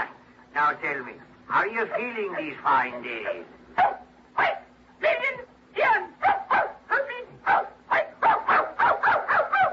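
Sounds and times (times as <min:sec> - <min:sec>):
steady low hum: 0:00.0 - 0:09.7
speech: 0:00.6 - 0:04.5
dog barking: 0:01.9 - 0:04.7, 0:06.2 - 0:09.7.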